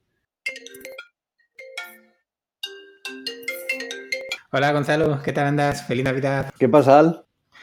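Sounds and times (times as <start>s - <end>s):
melodic electronic tone of bright chiming notes: 0.5s - 4.5s
outgoing phone call ringing tone: 0.5s - 4.5s
speech: 4.5s - 7.3s.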